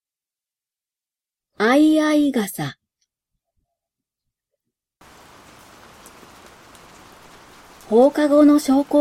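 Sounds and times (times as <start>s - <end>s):
speech: 1.6s - 2.8s, 7.9s - 8.9s
soft scattered rain drips: 5.0s - 8.9s
steady hissing rain downpour: 5.0s - 8.9s.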